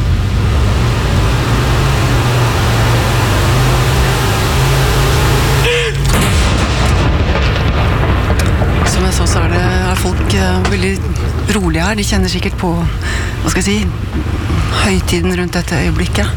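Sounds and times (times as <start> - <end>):
steady rumble of a crowd or wind noise: 0.0 - 5.2, 6.0 - 16.3
cannon salute shot booming: 6.0 - 11.9
speech: 11.9 - 16.3.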